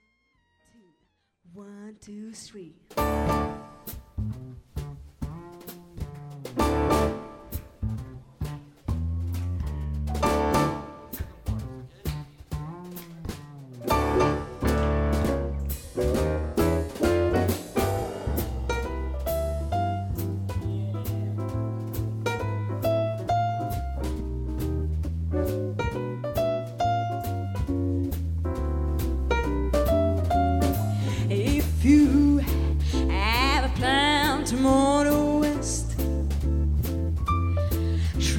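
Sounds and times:
speech: 0:01.4 - 0:03.5
crisp drum hits: 0:02.9 - 0:31.9
piano chords: 0:03.0 - 0:03.9, 0:06.6 - 0:07.8, 0:10.1 - 0:11.6, 0:13.8 - 0:32.4
jazz standard played on radio: 0:03.0 - 0:38.3
walking bass: 0:03.0 - 0:38.3.

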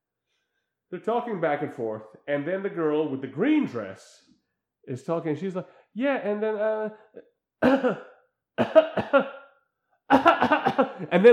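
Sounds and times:
speech: 0:00.9 - 0:09.4, 0:10.1 - 0:11.3
person imitating a coughing fit: 0:07.6 - 0:11.3.

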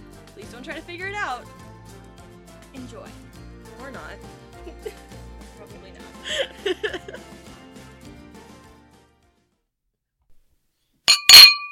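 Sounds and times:
speech: 0:00.4 - 0:01.6, 0:02.8 - 0:07.6
laughter: 0:04.6 - 0:05.1, 0:06.2 - 0:07.3
glasses clinking in a toast: 0:11.1 - 0:11.7.

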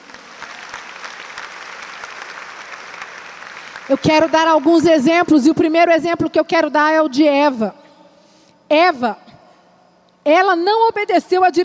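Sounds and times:
audience at a church service applauding: 0:00.0 - 0:04.8
speech: 0:03.9 - 0:07.8, 0:08.7 - 0:09.2, 0:10.3 - 0:11.6.

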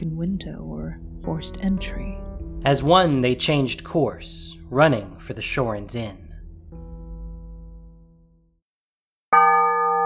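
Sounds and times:
speech: 0:00.0 - 0:06.2
large town bell tolling: 0:00.5 - 0:08.4.

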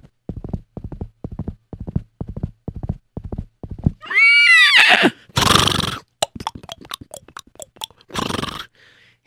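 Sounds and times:
galloping horse hooves clip-clopping: 0:00.0 - 0:04.2, 0:06.2 - 0:08.6
horses neighing and whinnying: 0:04.0 - 0:06.1, 0:08.1 - 0:08.7
horse snort: 0:05.4 - 0:08.7.

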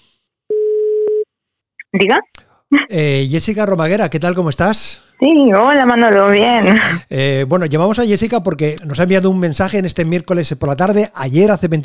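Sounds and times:
electronic telephone ringback tone: 0:00.5 - 0:01.2
speech: 0:02.0 - 0:11.8.

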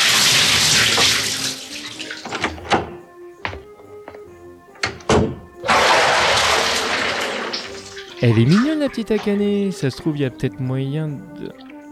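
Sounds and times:
video game bathwater splashing as a character gets into a bath: 0:00.0 - 0:02.3, 0:05.6 - 0:09.6
sharp thunks: 0:02.2 - 0:06.5
speech: 0:08.2 - 0:11.6.

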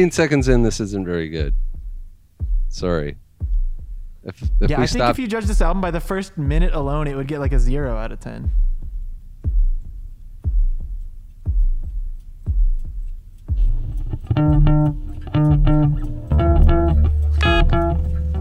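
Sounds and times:
speech: 0:00.0 - 0:01.6, 0:02.7 - 0:03.2, 0:04.2 - 0:08.7, 0:14.4 - 0:15.0
low heartbeat thumping: 0:00.4 - 0:18.3
bright sustained electronic tones: 0:14.0 - 0:18.3.

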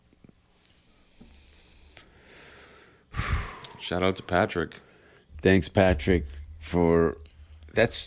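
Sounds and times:
person sniffing a glass of smoky rye whiskey: 0:00.6 - 0:03.8
speech: 0:03.8 - 0:07.2, 0:07.8 - 0:08.0.

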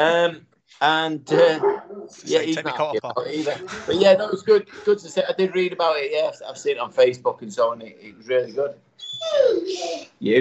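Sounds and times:
laughter: 0:00.0 - 0:08.6
speech: 0:00.0 - 0:10.3
dog barking excitedly: 0:01.5 - 0:02.2.

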